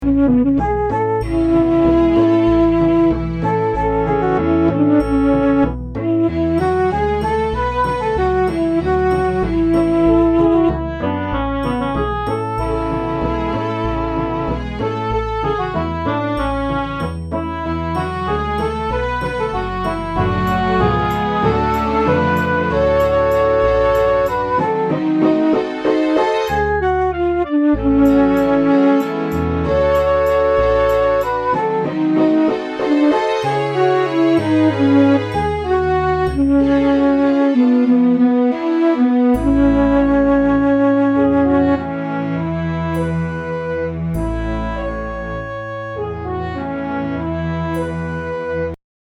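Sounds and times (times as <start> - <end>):
inspirational show tune: 0.0 - 48.7.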